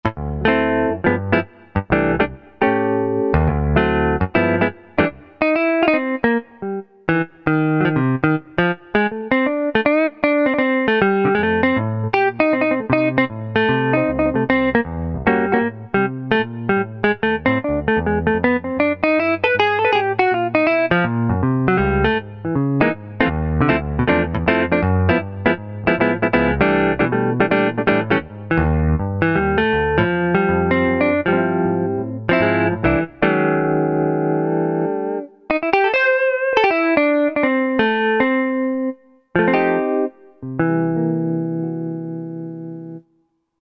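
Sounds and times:
country jazz music: 0:00.0 - 0:43.0.

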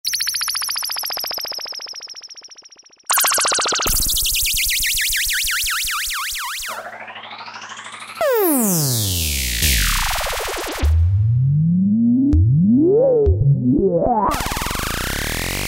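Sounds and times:
synth effects: 0:03.1 - 0:15.5.

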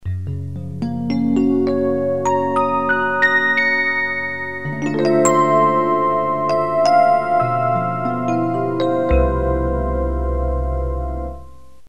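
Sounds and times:
electric piano preset demos: 0:00.4 - 0:11.8.

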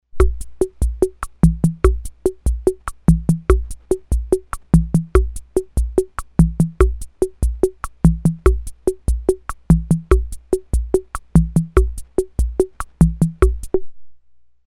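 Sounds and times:
Ace Tone Rhythm Ace FR-2L drum machine cha-cha rhythm: 0:00.1 - 0:13.9.

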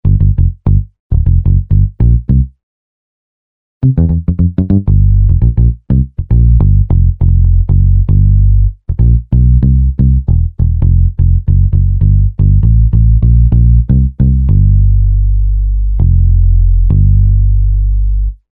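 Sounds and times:
muted electric bass: 0:00.0 - 0:02.6, 0:03.8 - 0:18.5.

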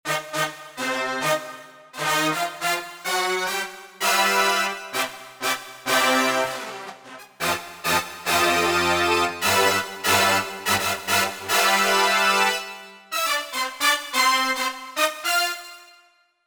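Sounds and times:
Roland JV-880 brass section factory patch: 0:00.1 - 0:16.0.

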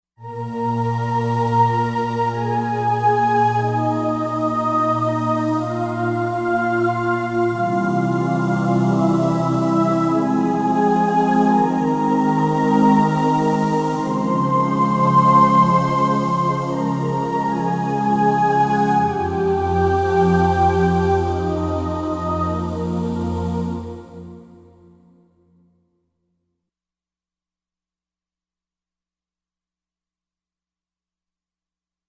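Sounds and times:
breathy choir: 0:00.3 - 0:25.0.

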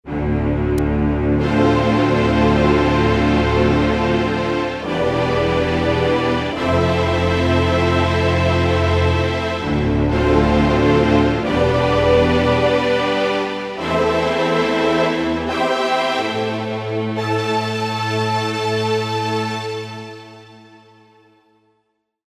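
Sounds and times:
vocal strings: 0:00.1 - 0:21.0.

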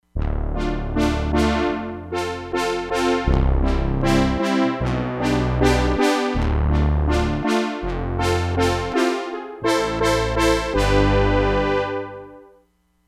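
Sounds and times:
brass ensemble playing: 0:00.4 - 0:12.4.

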